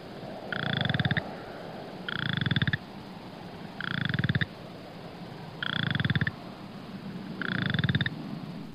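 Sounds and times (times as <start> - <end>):
faint hum: 0.0 - 8.7
striped chorus frog rasping trills: 0.5 - 1.3, 2.1 - 2.9, 3.8 - 4.6, 5.6 - 6.4, 7.4 - 8.2.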